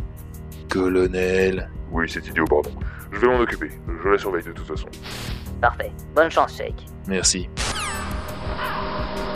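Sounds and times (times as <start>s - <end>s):
speech: 0.7s - 7.7s
crows cawing: 8.4s - 9.2s.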